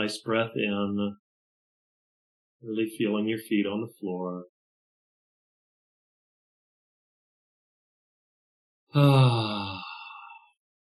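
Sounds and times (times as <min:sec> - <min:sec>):
speech: 0:00.0 - 0:01.2, 0:02.6 - 0:04.5, 0:08.9 - 0:09.8
drawn-out groaning yawn: 0:09.0 - 0:10.5.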